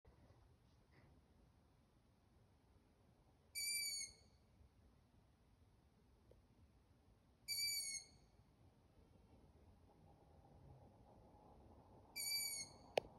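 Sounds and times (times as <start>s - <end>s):
Long-eared owl Asio otus in Ladakh Nubra: 3.6s - 4.3s, 7.5s - 8.2s, 12.2s - 12.9s.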